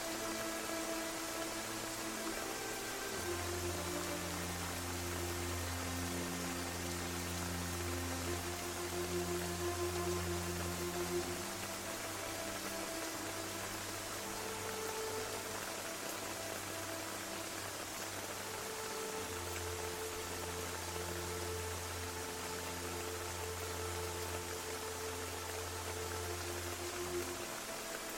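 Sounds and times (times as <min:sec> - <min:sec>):
gentle rain: 0:00.0 - 0:28.1
soft ambient music with held synth tones: 0:00.0 - 0:28.1.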